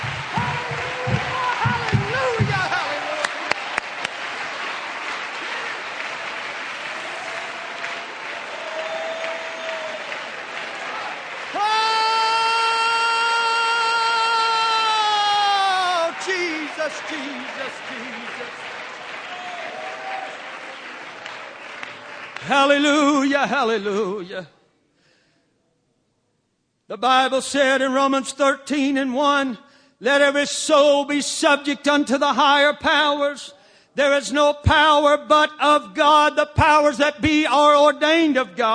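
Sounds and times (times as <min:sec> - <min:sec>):
people cheering: 0:00.0 - 0:22.8
congregation clapping and applauding: 0:00.0 - 0:23.5
speech: 0:23.4 - 0:24.5, 0:26.9 - 0:38.7.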